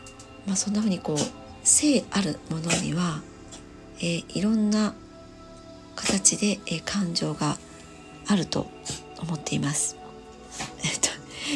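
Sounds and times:
speech: 0.4 - 3.3, 4.0 - 5.0, 6.0 - 7.6, 8.3 - 10.0
dog coughing: 2.7 - 3.0, 8.8 - 9.2, 10.5 - 11.0.

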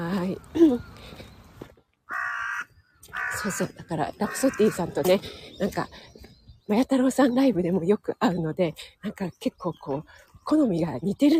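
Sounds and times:
speech: 0.3 - 1.2, 3.4 - 11.3
crow cawing loudly and harshly: 2.1 - 3.6, 4.2 - 5.0.

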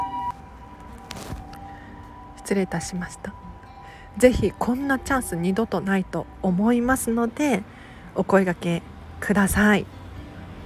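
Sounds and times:
ambulance siren wailing outside: 0.0 - 6.8
speech: 2.5 - 3.5, 4.2 - 10.0.

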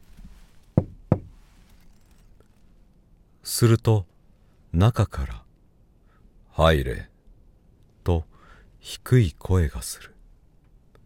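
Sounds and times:
delivery worker knocking on wooden apartment front door: 0.8 - 1.4
speech: 3.6 - 4.1, 4.7 - 5.4, 6.6 - 7.1, 8.0 - 10.1.

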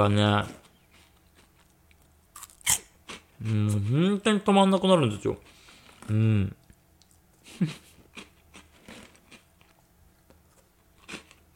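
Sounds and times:
speech: 0.0 - 0.6, 3.4 - 5.5, 6.1 - 6.6, 7.5 - 7.8
crunching and chewing a small crunchy cheese snack: 0.6 - 3.3, 8.1 - 9.8, 10.5 - 11.5.

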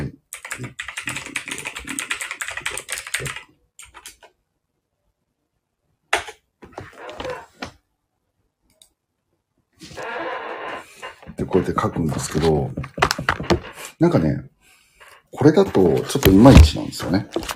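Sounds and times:
typing on a computer keyboard: 0.3 - 4.3
speech: 11.4 - 13.4, 14.0 - 14.5, 15.4 - 17.5.

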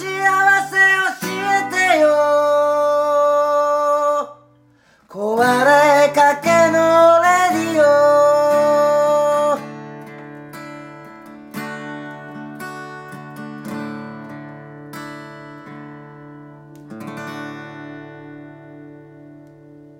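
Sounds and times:
1990 Japanese pop ballad with sustained ringing chords: 0.0 - 4.5, 5.2 - 14.8.

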